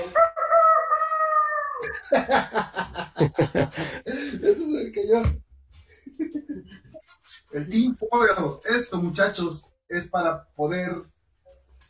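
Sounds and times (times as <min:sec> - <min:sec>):
person imitating a rooster crowing: 0:00.0 - 0:02.0
laughter: 0:01.8 - 0:04.8
speech: 0:01.9 - 0:05.4, 0:06.2 - 0:06.8, 0:07.5 - 0:11.1.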